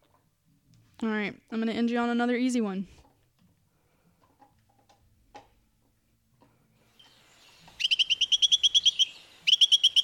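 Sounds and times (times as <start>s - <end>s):
speech: 1.0s - 3.0s
Carolina wren singing: 7.0s - 10.0s.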